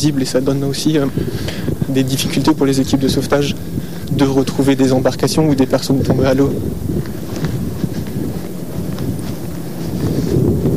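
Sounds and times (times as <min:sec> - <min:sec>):
speech: 0:00.0 - 0:06.9
strong wind gusts buffeting the microphone on a seafront: 0:00.0 - 0:10.7.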